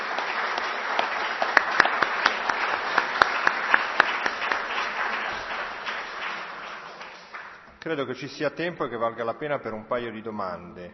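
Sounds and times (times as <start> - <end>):
audience applause: 0.0 - 7.7
speech: 7.9 - 10.9.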